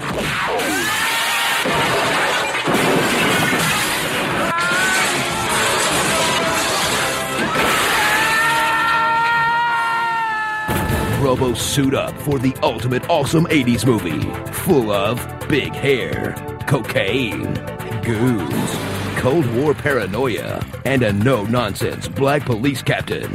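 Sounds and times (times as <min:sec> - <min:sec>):
sharp impacts and breaking debris crashing: 0:00.0 - 0:09.0
glass shattering: 0:00.2 - 0:08.4
high strained cries or screams: 0:00.5 - 0:01.7, 0:04.3 - 0:11.1
speech: 0:11.3 - 0:23.3.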